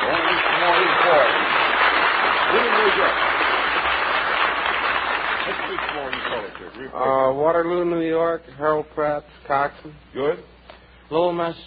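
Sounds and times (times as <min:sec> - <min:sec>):
large crowd cheering and applauding: 0:00.0 - 0:06.7
speech: 0:06.8 - 0:10.5, 0:11.1 - 0:11.6.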